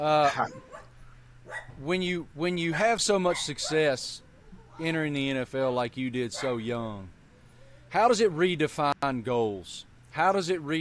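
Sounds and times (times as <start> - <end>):
speech: 0.0 - 0.7, 1.8 - 4.2, 4.8 - 7.2, 7.9 - 10.8
low steady hum: 0.0 - 10.8
dog barking with a whiny yelping edge: 0.2 - 1.8, 3.3 - 3.9, 6.3 - 6.7.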